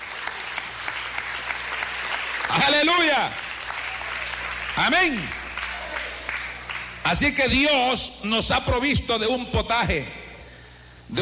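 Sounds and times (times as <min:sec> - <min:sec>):
crowd applauding: 0:00.0 - 0:07.6
speech: 0:02.5 - 0:03.4, 0:04.8 - 0:05.4, 0:07.0 - 0:10.2.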